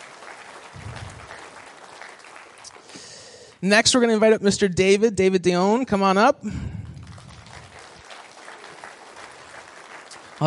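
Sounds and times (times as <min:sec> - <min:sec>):
crowd applauding with many hands clapping: 0:00.0 - 0:03.6, 0:06.5 - 0:10.4
speech: 0:03.6 - 0:06.7.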